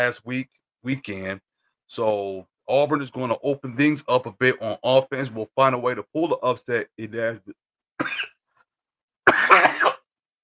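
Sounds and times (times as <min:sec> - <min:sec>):
speech: 0:00.0 - 0:08.3
man with a dry throat coughing: 0:08.0 - 0:08.4, 0:09.2 - 0:10.1.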